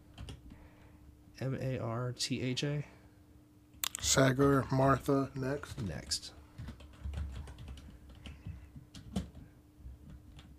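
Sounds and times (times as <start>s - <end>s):
typing a word on a computer keyboard: 0.1s - 0.5s, 6.6s - 10.5s
speech: 1.4s - 3.0s, 4.0s - 6.4s.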